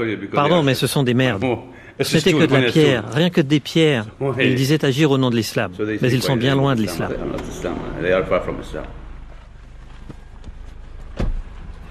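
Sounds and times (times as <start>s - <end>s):
speech: 0.0s - 9.0s
car interior low rumble: 7.1s - 11.8s
solid car door thud: 10.0s - 11.6s.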